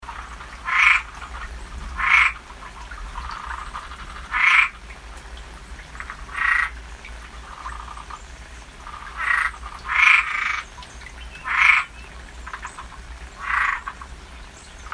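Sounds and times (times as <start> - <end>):
Cuban treefrog calls: 0.1 - 4.8, 5.9 - 6.8, 7.4 - 8.2, 8.8 - 14.1.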